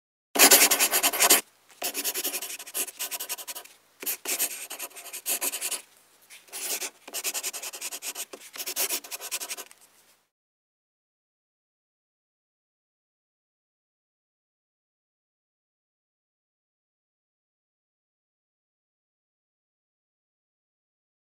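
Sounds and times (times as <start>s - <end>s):
pencil writing: 0.4s - 5.8s, 6.5s - 9.7s.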